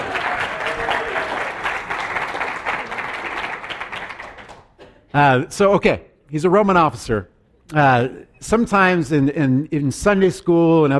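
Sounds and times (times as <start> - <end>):
audience applauding the sound technician: 0.0 - 4.8
speech: 5.2 - 10.9.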